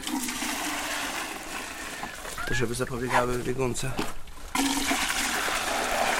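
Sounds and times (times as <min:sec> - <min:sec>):
milk mixed with flaxseed pouring from a bucket for goats: 0:00.0 - 0:02.9, 0:04.4 - 0:06.1
speech: 0:02.5 - 0:04.7.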